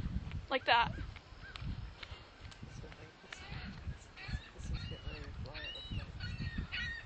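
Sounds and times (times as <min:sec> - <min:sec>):
low rumbling in a busy outdoor background: 0:00.0 - 0:07.0
speech: 0:00.5 - 0:01.0
seagull calling in sharp nasal squawks: 0:04.2 - 0:07.0.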